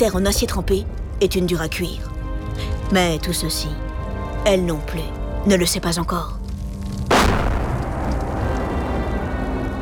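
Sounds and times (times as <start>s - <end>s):
speech: 0.0s - 6.4s
heavy bomb blast during a wartime air raid over Poland, heard from a cellar: 7.0s - 9.7s.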